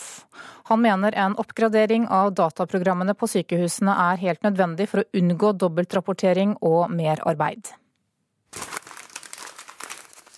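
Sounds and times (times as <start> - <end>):
speech: 0.7 - 7.8
sheet of paper form being crumpled up: 8.5 - 10.3.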